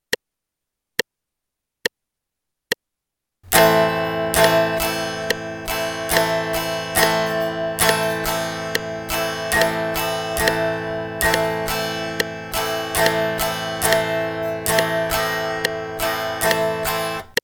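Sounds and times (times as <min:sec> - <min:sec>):
guitar strumming an A minor chord: 0:03.5 - 0:17.4.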